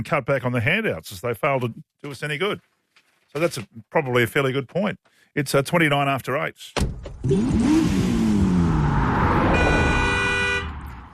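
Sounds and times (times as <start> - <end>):
speech: 0.0 - 2.7, 3.3 - 8.1
car engine revving: 7.1 - 11.1
car horn blast: 9.5 - 11.1.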